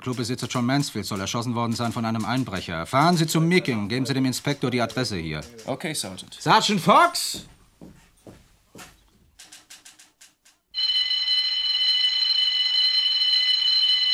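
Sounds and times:
speech: 0:00.0 - 0:07.6
faint knocks: 0:05.4 - 0:10.4
burglar alarm ringing at the scene of a break-in: 0:10.8 - 0:14.1.

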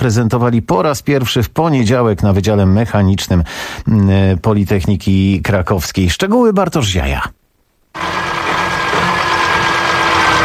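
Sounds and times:
speech: 0:00.0 - 0:08.2
hydrogen-fuelled internal combustion engine running: 0:08.0 - 0:10.4.

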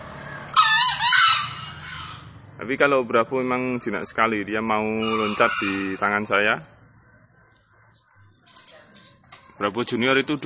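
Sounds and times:
wild green junglefowl giving hoarse harsh crow from a tree: 0:00.0 - 0:02.4, 0:03.2 - 0:08.4
speech: 0:02.6 - 0:06.8, 0:09.6 - 0:10.4.

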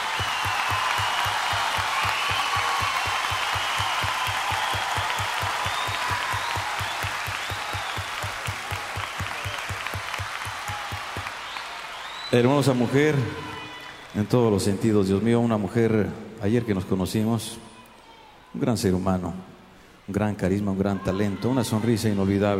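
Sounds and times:
audience applause for a female guest performer on an evening show: 0:00.0 - 0:14.9
speech: 0:12.3 - 0:13.5, 0:14.2 - 0:17.7, 0:18.5 - 0:19.5, 0:20.1 - 0:22.5.

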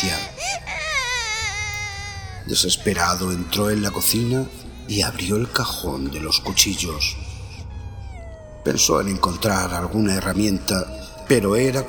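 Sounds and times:
baby crying in a long wavering wail: 0:00.0 - 0:04.6, 0:06.1 - 0:10.7
speech: 0:02.5 - 0:07.2, 0:08.6 - 0:11.8.

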